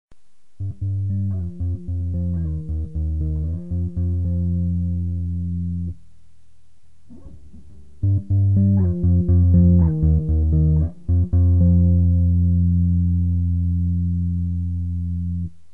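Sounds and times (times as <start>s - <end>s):
bass sound effects: 0.6s - 6.0s, 8.0s - 15.5s.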